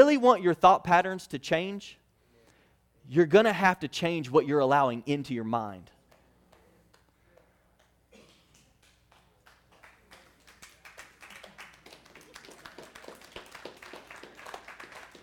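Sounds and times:
speech: 0:00.0 - 0:02.0, 0:03.1 - 0:06.0
scattered polite clapping from a small audience: 0:07.8 - 0:15.2.

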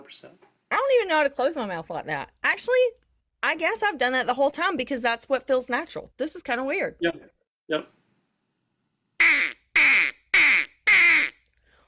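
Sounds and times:
speech: 0:00.0 - 0:08.0
loud quacks blown on a duck call: 0:09.2 - 0:11.4.

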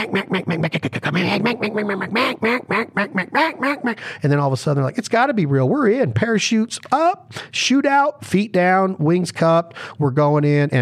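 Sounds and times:
duck call blown imitating duck quacks: 0:00.0 - 0:04.0
speech: 0:00.0 - 0:10.8.

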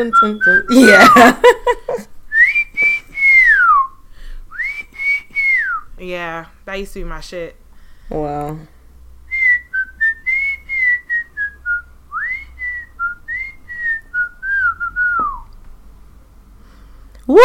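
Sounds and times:
person whistling a short original melodic tune: 0:00.0 - 0:01.3, 0:02.3 - 0:05.9, 0:09.3 - 0:15.5
speech: 0:00.0 - 0:01.8, 0:06.1 - 0:08.8
laughter: 0:00.7 - 0:02.1.

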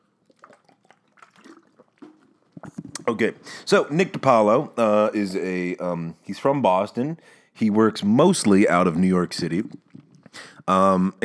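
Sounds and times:
small liquid splashes: 0:00.0 - 0:03.0
sips and gulps of water: 0:00.0 - 0:03.6, 0:09.6 - 0:10.7
wet swallows: 0:00.1 - 0:03.1, 0:09.6 - 0:10.6
speech: 0:03.1 - 0:09.8, 0:10.7 - 0:11.2.

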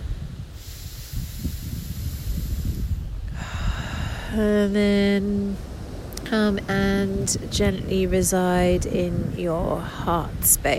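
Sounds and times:
deep breath taken during guided meditation: 0:00.4 - 0:04.4
speech: 0:04.3 - 0:05.7, 0:06.3 - 0:10.7.

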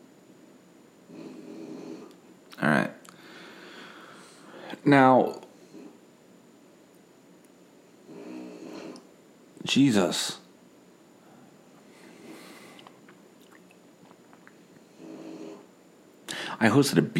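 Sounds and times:
low rumbling snoring: 0:01.1 - 0:02.2, 0:08.0 - 0:09.0, 0:14.8 - 0:15.7
speech: 0:02.6 - 0:03.0, 0:04.8 - 0:05.4, 0:09.8 - 0:10.4, 0:16.6 - 0:17.1.

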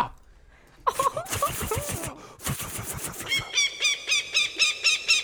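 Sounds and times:
hawk screeching: 0:00.9 - 0:04.6
hawk rapid clicking chatter calls: 0:00.9 - 0:05.2.

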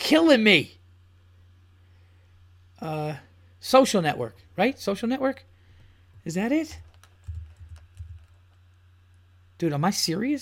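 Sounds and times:
low steady hum: 0:00.0 - 0:10.3
speech: 0:00.1 - 0:00.8, 0:02.8 - 0:05.5, 0:06.2 - 0:06.8, 0:09.6 - 0:10.3
typing on a computer keyboard: 0:06.7 - 0:08.7.

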